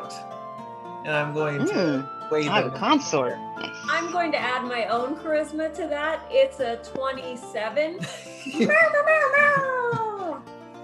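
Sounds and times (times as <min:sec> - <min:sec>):
speech: 0:01.0 - 0:09.5
laughter: 0:01.4 - 0:04.1, 0:08.0 - 0:10.4
person imitating a cat meow: 0:01.6 - 0:03.9, 0:09.2 - 0:10.3.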